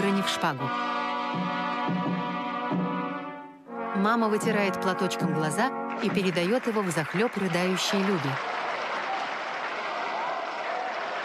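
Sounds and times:
speech: 0:00.1 - 0:03.0, 0:04.0 - 0:08.6
large audience applauding in a theatre hall: 0:05.9 - 0:11.2.

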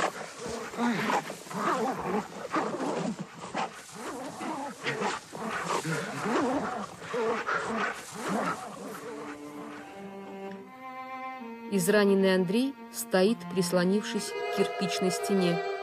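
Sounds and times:
several dogs snarling and growling while mauling a man: 0:00.0 - 0:10.4
speech: 0:00.8 - 0:02.4, 0:11.8 - 0:15.7.

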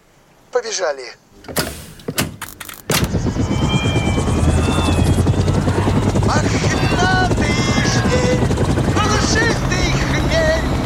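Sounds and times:
speech: 0:00.6 - 0:01.6
sharp thumps: 0:01.4 - 0:03.2
old helicopter engine roaring up for a rolling takeoff: 0:01.4 - 0:10.8.

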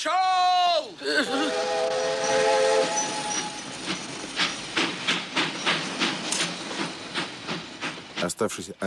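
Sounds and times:
speech: 0:00.0 - 0:00.2, 0:01.0 - 0:01.9, 0:08.3 - 0:08.8
train pulling away on rails: 0:00.4 - 0:08.8.

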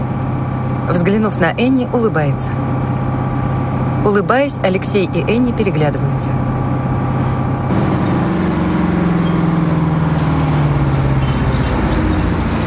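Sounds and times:
truck engine droning as it pulls up beside a roadside deli: 0:00.0 - 0:12.6
speech: 0:00.9 - 0:02.7, 0:04.0 - 0:06.4
low tone sinking in pitch: 0:06.0 - 0:12.6.

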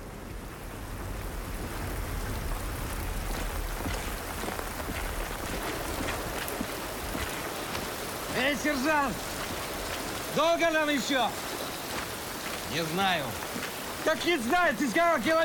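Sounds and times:
heavy rain drumming on surfaces: 0:00.0 - 0:15.4
speech: 0:08.5 - 0:09.3, 0:10.4 - 0:11.5, 0:12.7 - 0:15.4.

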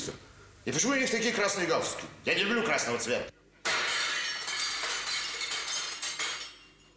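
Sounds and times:
speech: 0:00.0 - 0:03.4
falling mirror glass shards tinkling and clinking: 0:03.7 - 0:06.9
mirror glass shattering in a workshop: 0:03.7 - 0:06.9.

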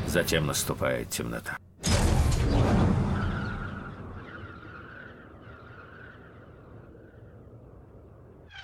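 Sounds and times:
speech: 0:00.1 - 0:01.6
bomb exploding in a fortress courtyard: 0:01.8 - 0:03.8.

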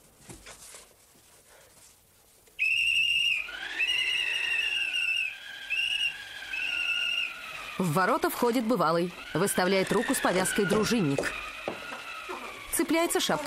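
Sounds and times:
quiet rustles: 0:00.0 - 0:02.6
shrill whistle blowing: 0:02.6 - 0:07.7
speech: 0:07.8 - 0:11.5, 0:12.9 - 0:13.4.

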